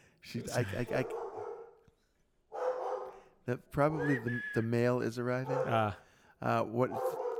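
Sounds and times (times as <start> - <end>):
speech: 0.3 - 1.2, 3.5 - 7.2
female dog barking: 0.9 - 1.8, 2.5 - 3.3, 5.4 - 5.9, 6.9 - 7.3.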